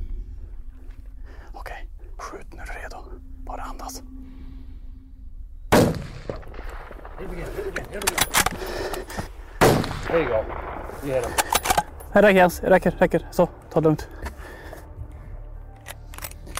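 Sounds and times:
person whispering: 0:01.4 - 0:04.6
hunter's rifle shot fired at a bear: 0:05.7 - 0:08.7, 0:09.6 - 0:12.0
speech: 0:07.2 - 0:08.9, 0:10.1 - 0:11.5, 0:12.1 - 0:14.2.

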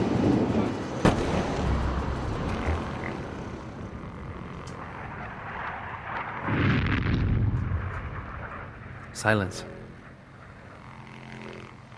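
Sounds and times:
steady hum: 0:00.0 - 0:11.9
Israeli Air Force bombs exploding far away over Beirut: 0:01.0 - 0:02.9, 0:05.0 - 0:08.9
speech: 0:09.2 - 0:09.8.

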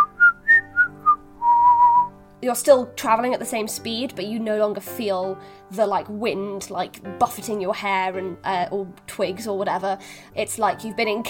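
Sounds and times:
person whistling a short tune: 0:00.0 - 0:02.1
speech: 0:02.4 - 0:11.2.

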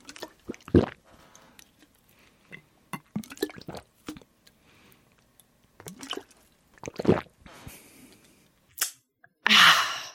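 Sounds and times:
bubbling and slurping as water is drunk through a straw from a flavour pod: 0:00.0 - 0:04.3, 0:05.8 - 0:07.5.

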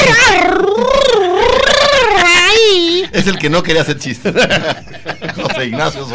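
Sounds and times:
voice imitating a cartoonish child's wailing cry: 0:00.0 - 0:03.2
laughter: 0:02.9 - 0:06.1
speech: 0:03.2 - 0:05.0, 0:05.6 - 0:06.1.

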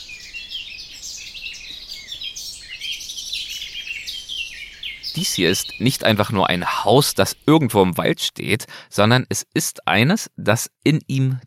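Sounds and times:
many birds chirping and singing in a forest: 0:00.0 - 0:07.5
speech: 0:05.2 - 0:11.4.

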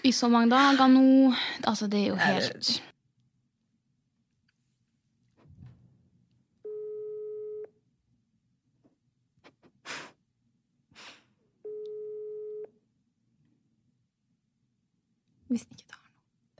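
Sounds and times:
speech: 0:00.0 - 0:02.9, 0:15.6 - 0:15.9
telephone ringback tone while calling: 0:06.6 - 0:07.7, 0:11.6 - 0:12.7.

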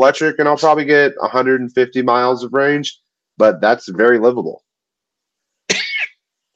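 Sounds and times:
speech: 0:00.0 - 0:04.6
single sharp loud rough breathy cough: 0:05.7 - 0:06.2.

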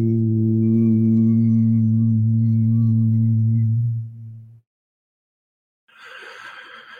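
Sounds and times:
person humming long steady low note during meditation: 0:00.0 - 0:04.6.

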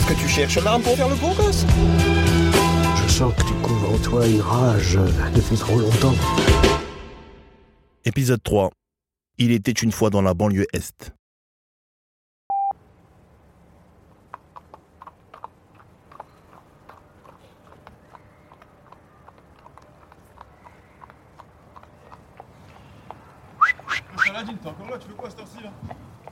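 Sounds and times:
speech: 0:00.2 - 0:02.3, 0:03.1 - 0:06.7, 0:08.0 - 0:08.8, 0:09.4 - 0:11.2, 0:24.2 - 0:26.0
horse hooves clip-clopping at a walking pace: 0:13.9 - 0:26.3.

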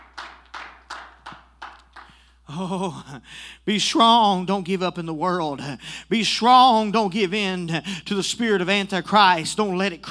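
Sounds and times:
audience clapping hands in unison: 0:00.0 - 0:02.2
speech: 0:02.5 - 0:10.0.

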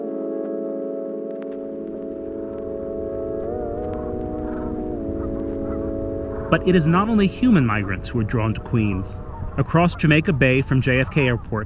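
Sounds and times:
flock of swans honking: 0:00.0 - 0:11.6
speech: 0:06.5 - 0:11.6.

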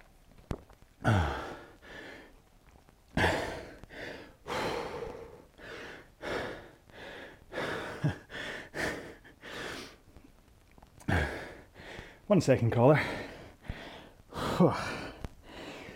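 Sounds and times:
heavy gasping breaths after eating spicy food: 0:01.0 - 0:02.4, 0:03.2 - 0:10.2, 0:11.0 - 0:15.9
speech: 0:12.3 - 0:13.3, 0:14.6 - 0:15.0.

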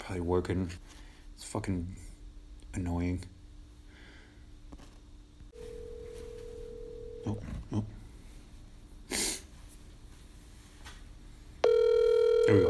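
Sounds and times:
speech: 0:00.1 - 0:02.1, 0:02.8 - 0:03.3, 0:07.2 - 0:08.0, 0:12.5 - 0:12.6
phone call ringback tone through a speakerphone: 0:05.6 - 0:07.4, 0:11.6 - 0:12.6.

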